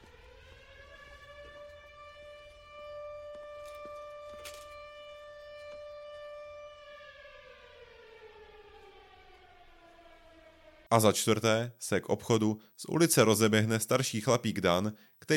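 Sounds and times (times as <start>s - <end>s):
siren wailing: 0.0s - 11.4s
speech: 10.9s - 15.3s.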